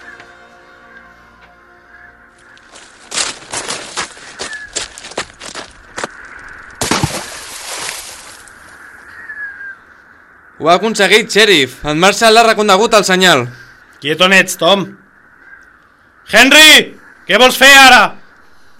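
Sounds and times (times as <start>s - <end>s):
steady outdoor noise: 0.0s - 18.7s
sharp thudding running footsteps: 2.3s - 6.2s
person jumping into water with a loud splash: 6.8s - 8.4s
speech: 10.6s - 15.0s, 16.3s - 18.2s.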